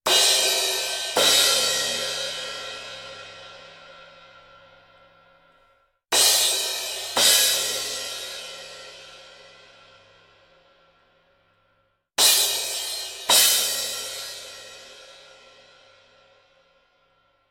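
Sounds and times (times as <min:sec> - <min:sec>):
cymbals: 0:00.1 - 0:04.2, 0:06.1 - 0:09.4, 0:12.2 - 0:15.8.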